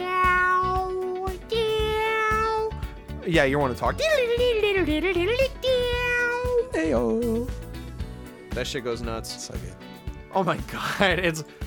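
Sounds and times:
cat meowing: 0:00.0 - 0:02.8, 0:05.6 - 0:07.4
speech: 0:03.3 - 0:05.6, 0:06.8 - 0:07.6, 0:08.6 - 0:11.6.

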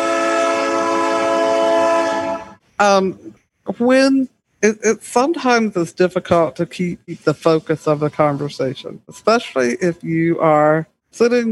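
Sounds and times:
train horn blaring: 0:00.0 - 0:02.6
speech: 0:02.8 - 0:11.5.

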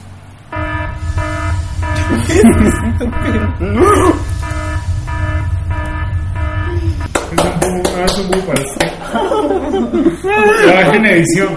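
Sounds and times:
low rumble: 0:00.0 - 0:10.1
harsh electronic alarm buzzer: 0:00.5 - 0:07.1
laughter: 0:02.1 - 0:04.3, 0:07.1 - 0:11.5
speech: 0:02.3 - 0:04.3, 0:07.7 - 0:11.5.

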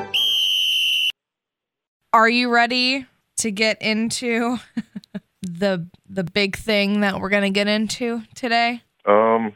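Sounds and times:
loud shrill referee whistle blast: 0:00.1 - 0:01.2
speech: 0:02.1 - 0:04.9, 0:05.6 - 0:09.5.

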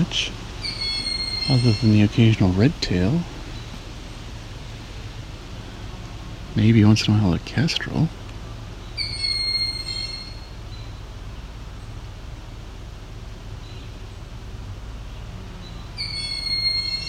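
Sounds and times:
speech: 0:00.0 - 0:00.4, 0:01.5 - 0:03.3, 0:06.6 - 0:08.2
steady low rumbling background: 0:00.0 - 0:17.0
young hawk screaming for food: 0:00.6 - 0:02.1, 0:09.0 - 0:10.5, 0:16.0 - 0:17.0.

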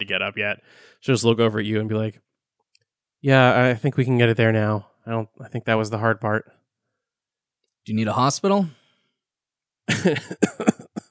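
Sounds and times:
speech: 0:00.0 - 0:02.3, 0:03.2 - 0:06.6, 0:07.8 - 0:08.8, 0:09.9 - 0:10.7
woman coughing and clearing her throat after a fall: 0:10.2 - 0:11.1.

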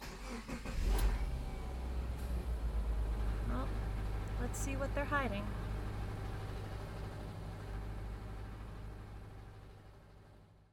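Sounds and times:
car engine humming while driving: 0:00.0 - 0:09.9
speech: 0:04.5 - 0:05.7.

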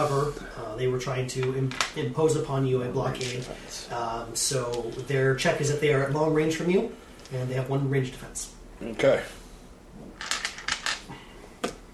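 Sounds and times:
speech: 0:00.0 - 0:09.4
many dice rolling and clattering across a surface: 0:10.2 - 0:11.0.

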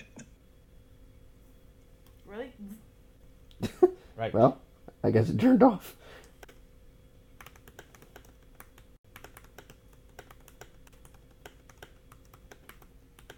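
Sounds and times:
speech: 0:04.2 - 0:06.2
typing on a clicky tablet keyboard: 0:07.4 - 0:13.3.

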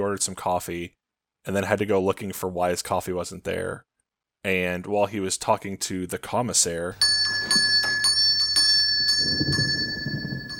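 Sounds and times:
speech: 0:00.0 - 0:07.7
ringing bell: 0:07.0 - 0:10.5.

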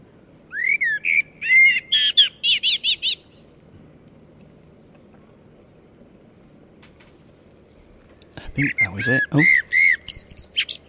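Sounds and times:
common blackbird singing: 0:00.5 - 0:03.5, 0:08.4 - 0:10.8
speech: 0:08.6 - 0:09.6.

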